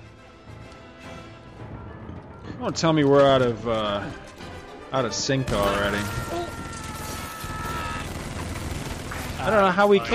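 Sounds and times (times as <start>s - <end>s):
speech: 2.6s - 4.3s, 4.9s - 6.4s, 9.4s - 10.1s
automatic rifle gunfire in a film: 6.8s - 9.6s.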